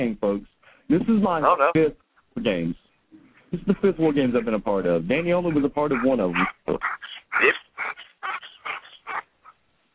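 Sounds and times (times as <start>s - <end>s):
speech: 0.0s - 2.8s, 3.5s - 8.0s
dog whimpering over a phone line: 6.0s - 9.6s.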